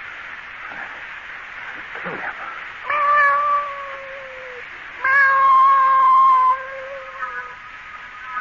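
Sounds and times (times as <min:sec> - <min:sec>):
cat yowling and meowing: 0:02.9 - 0:07.6.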